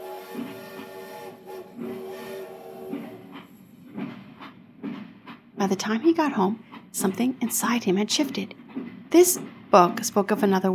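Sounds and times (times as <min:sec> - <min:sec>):
train rumbling on rails: 0:00.0 - 0:10.7
wheels clacking over track joints: 0:02.9 - 0:10.7
speech: 0:05.6 - 0:10.7.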